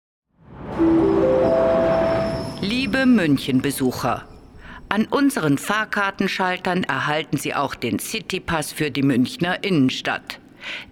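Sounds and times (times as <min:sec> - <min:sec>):
busy train station ambience hum: 0:00.5 - 0:07.1
rising three-note chime: 0:00.7 - 0:02.7
speech: 0:03.0 - 0:10.9.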